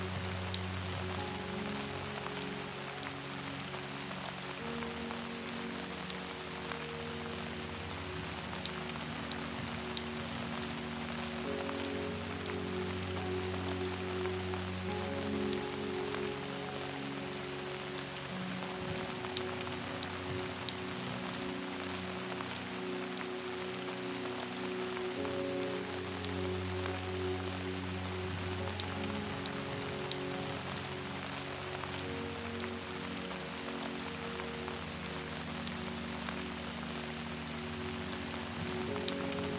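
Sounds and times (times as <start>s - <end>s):
gentle low piano melody: 0.0s - 39.5s
steady rain pattering: 0.0s - 39.5s.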